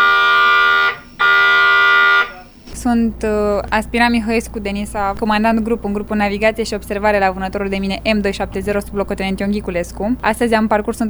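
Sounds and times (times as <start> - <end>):
loud harsh electronic alarm blaring: 0.0 - 2.6
speech: 2.8 - 11.0.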